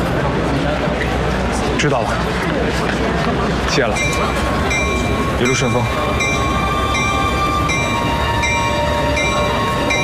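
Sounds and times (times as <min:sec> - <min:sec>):
train departing from station rumbling: 0:00.0 - 0:10.0
speech: 0:01.8 - 0:06.3
metallic whine: 0:03.8 - 0:10.0.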